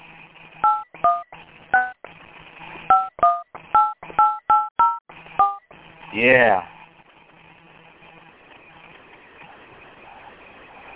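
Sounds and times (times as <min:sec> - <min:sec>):
touch-tone keypad beeps entering a phone number into a voicemail system: 0:00.6 - 0:02.0, 0:02.9 - 0:05.6
speech: 0:06.1 - 0:06.7.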